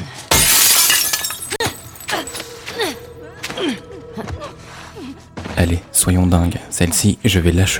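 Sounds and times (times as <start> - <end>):
glass wall being smashed in a video game: 0.3 - 2.2
glass shards tinkling and clattering down in a video game: 0.3 - 2.4
speech: 5.6 - 7.7.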